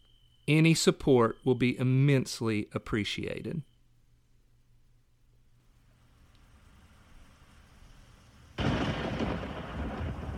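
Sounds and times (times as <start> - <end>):
speech: 0.5 - 3.7
heavy rain pouring: 8.6 - 10.3
thunder crash with low rumble: 8.6 - 10.3.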